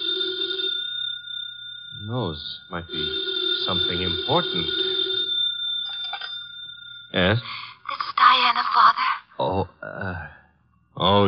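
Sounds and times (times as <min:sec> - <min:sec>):
telephone bell ringing: 0:00.0 - 0:08.6
speech: 0:02.1 - 0:04.9, 0:07.1 - 0:07.7, 0:11.0 - 0:11.2.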